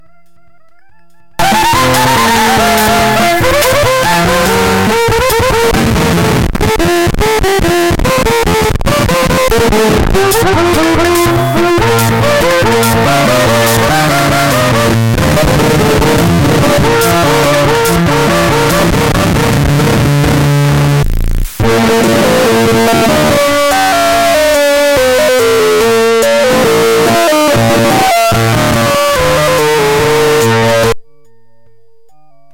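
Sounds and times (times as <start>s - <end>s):
keyboard: 0.0s - 32.5s.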